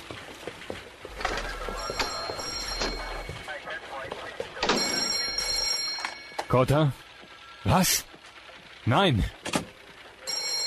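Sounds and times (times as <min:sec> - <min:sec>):
telephone ringing: 0:01.1 - 0:03.6, 0:04.5 - 0:06.6, 0:10.2 - 0:10.6
speech: 0:06.5 - 0:07.0, 0:07.6 - 0:08.1, 0:08.8 - 0:09.4.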